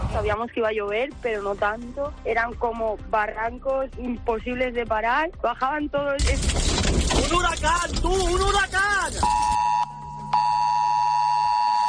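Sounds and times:
speech: 0.2s - 9.6s
high-pitched electronic beep: 9.2s - 11.8s.

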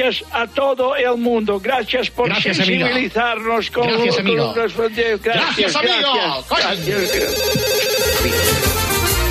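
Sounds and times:
speech: 0.0s - 8.7s
telephone ringing for an incoming call: 6.6s - 9.2s.

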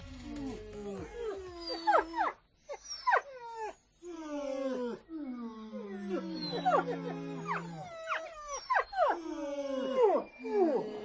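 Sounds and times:
dogs howling: 0.0s - 11.0s.

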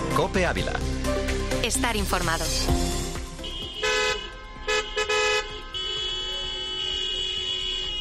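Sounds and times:
speech: 0.2s - 1.0s, 1.7s - 3.0s
steady traffic hum: 0.7s - 7.9s
taxi car horns honking in protest: 3.2s - 7.9s.

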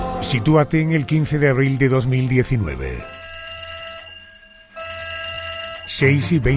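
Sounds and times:
speech: 0.2s - 3.2s, 6.0s - 6.5s
fire alarm electric bell ringing: 3.0s - 6.5s.

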